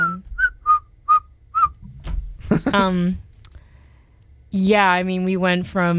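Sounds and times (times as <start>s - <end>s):
person whistling short high notes: 0.0s - 1.7s
speech: 2.7s - 3.3s, 4.5s - 5.9s.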